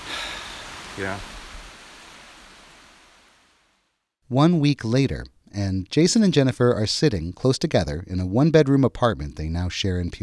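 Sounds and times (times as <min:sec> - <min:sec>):
flowing water: 0:00.0 - 0:03.7
speech: 0:01.0 - 0:01.4, 0:04.3 - 0:10.2.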